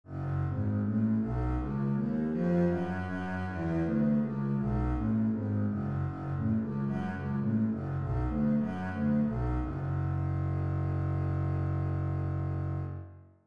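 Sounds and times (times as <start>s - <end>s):
bass in F sharp minor: 0.0s - 13.4s.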